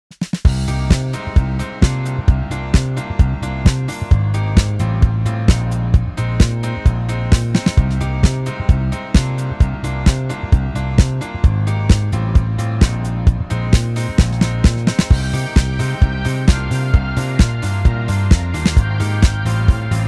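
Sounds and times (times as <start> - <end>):
disco bass: 0.4 - 20.0.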